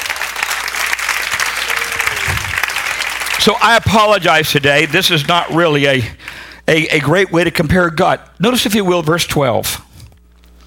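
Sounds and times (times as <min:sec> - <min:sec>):
audience applauding in praise of the Lord: 0:00.0 - 0:05.8
speech: 0:03.4 - 0:09.8.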